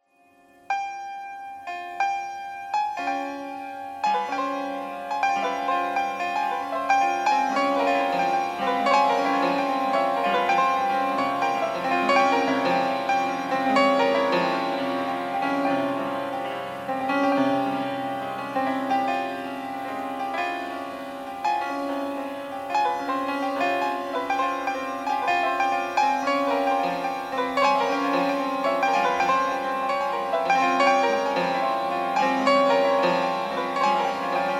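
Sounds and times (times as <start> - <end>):
piano thread noise: 0.7 - 34.5.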